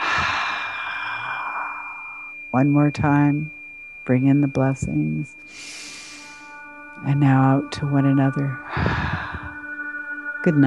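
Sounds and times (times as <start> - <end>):
deep breath in and out: 0.0 - 2.3, 5.5 - 6.6, 8.6 - 9.7
speech: 2.5 - 5.8, 7.0 - 9.3, 10.4 - 10.6.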